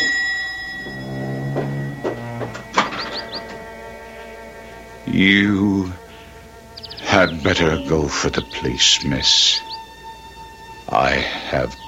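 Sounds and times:
bell ringing insistently: 0.0 - 3.8
speech: 5.2 - 6.0, 7.4 - 9.7, 10.9 - 11.8.

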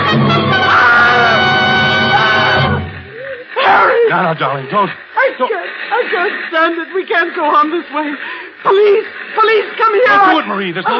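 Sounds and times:
woman shrieking in a long piercing cry: 0.6 - 1.4, 2.0 - 4.1
speech: 4.3 - 10.9.

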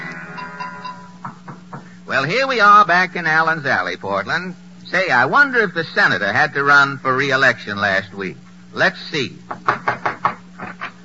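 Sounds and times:
low steady hum: 0.0 - 9.6
knocking on a door: 1.2 - 1.9, 9.5 - 10.7
speech: 2.2 - 9.9.

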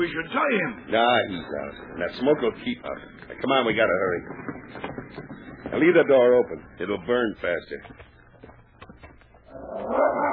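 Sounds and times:
speech: 0.0 - 8.1
sled team lead dog whining: 9.5 - 10.3
sled team lead dog yipping: 9.6 - 10.3.

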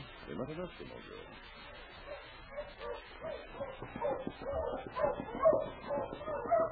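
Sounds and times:
speech: 0.3 - 1.8
team of husky sled dogs barking and yipping on a trail: 1.6 - 6.7.

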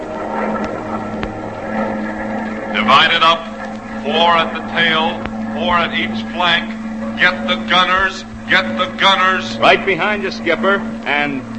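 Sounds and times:
Japanese bomber aircraft engine drone over the ocean: 0.0 - 11.5
speech: 2.9 - 11.5.

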